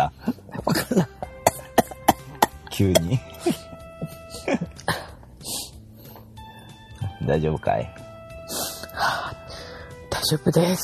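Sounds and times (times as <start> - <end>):
person coughing: 0.6 - 5.2
speech: 1.0 - 1.2, 2.8 - 3.6, 7.3 - 8.0, 10.3 - 10.8.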